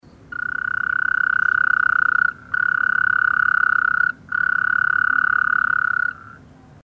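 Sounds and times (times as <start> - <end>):
Taipei treefrog Rhacophorus taipeianus calling: 0.0 - 6.7.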